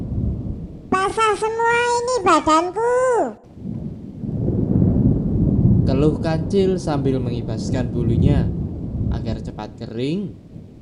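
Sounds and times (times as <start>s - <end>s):
deep rumble of thunder: 0.0s - 1.0s, 3.5s - 10.7s
steady rain: 0.0s - 10.7s
falling voice-like tone: 0.9s - 3.5s
speech: 1.0s - 3.5s, 5.9s - 8.6s, 9.2s - 10.4s.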